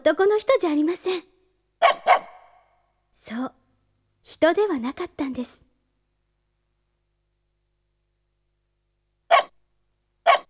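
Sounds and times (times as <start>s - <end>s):
speech: 0.0s - 2.0s, 3.2s - 3.6s, 4.2s - 5.6s
stray dog barking in short sharp yaps: 1.8s - 2.7s, 9.3s - 9.5s, 10.3s - 10.4s.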